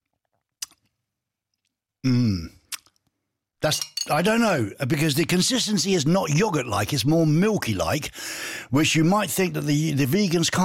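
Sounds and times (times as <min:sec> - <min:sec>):
faint mouth clicks: 0:00.6 - 0:00.9, 0:02.7 - 0:03.1
lip smacks of someone tasting a vegan yogurt alternative: 0:00.6 - 0:00.9, 0:02.7 - 0:03.1
person humming in appraisal while tasting: 0:02.0 - 0:02.6
speech: 0:02.0 - 0:02.6, 0:03.7 - 0:10.6.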